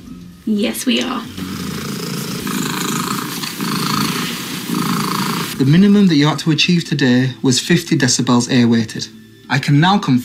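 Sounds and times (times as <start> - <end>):
speech: 0.4 - 1.5, 5.6 - 10.2
14-year-old domestic cat purring loudly: 1.3 - 5.6.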